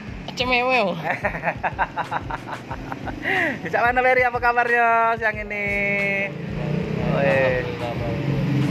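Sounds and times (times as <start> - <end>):
motorcycle passing: 0.0 - 4.0, 5.5 - 8.6
roadside traffic rumbling: 0.0 - 8.6
speech: 0.4 - 8.4
laughter: 1.0 - 3.7.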